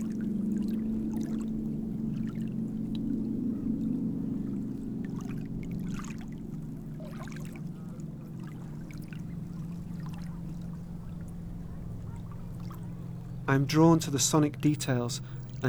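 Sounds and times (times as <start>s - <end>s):
wind-vibrated wire fence humming via contact microphone: 0.0s - 15.6s
speech: 13.5s - 15.6s.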